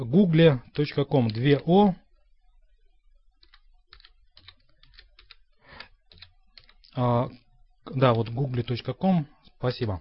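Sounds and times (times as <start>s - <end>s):
speech: 0.0s - 2.0s, 7.0s - 9.9s
typing on a computer keyboard: 3.4s - 7.0s.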